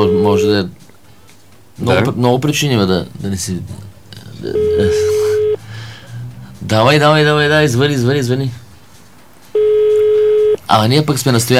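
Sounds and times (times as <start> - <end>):
phone call ringback tone: 0.0 - 0.6, 4.5 - 5.6, 9.6 - 10.6
speech: 0.0 - 0.8, 1.8 - 5.1, 6.7 - 8.6, 10.7 - 11.5.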